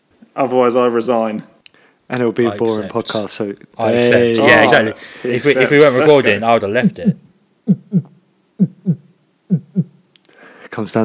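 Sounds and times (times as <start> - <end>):
speech: 0.4 - 1.5, 2.1 - 8.1, 10.8 - 11.0
heartbeat noise for dramatic effect: 6.8 - 10.0.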